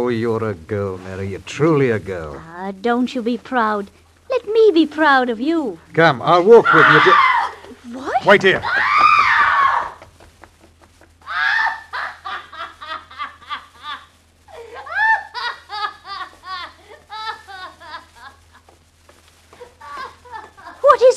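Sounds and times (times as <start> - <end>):
speech: 0.0 - 7.3, 7.9 - 9.0
woman screaming: 6.6 - 10.0, 11.3 - 12.2, 14.5 - 15.5
laughter: 10.6 - 18.7, 19.6 - 21.0.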